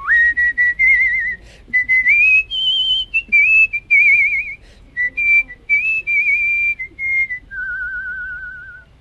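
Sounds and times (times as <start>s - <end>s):
pucker whistling a melody through pursed lips at a whistling convention: 0.0s - 8.9s.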